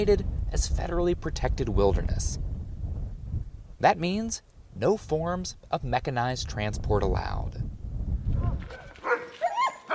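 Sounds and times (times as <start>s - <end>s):
speech: 0.0s - 2.5s, 3.8s - 7.6s
sled dogs barking and yipping at a kennel in Denali: 8.5s - 9.9s.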